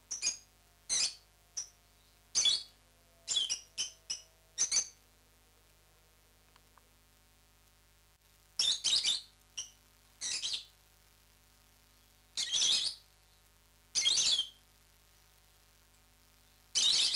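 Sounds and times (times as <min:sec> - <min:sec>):
rosy-faced lovebird uttering high squeaky chirps: 0:00.1 - 0:01.7, 0:02.4 - 0:02.7, 0:03.3 - 0:05.0, 0:08.6 - 0:10.7, 0:12.4 - 0:13.0, 0:14.0 - 0:14.6, 0:16.8 - 0:17.1.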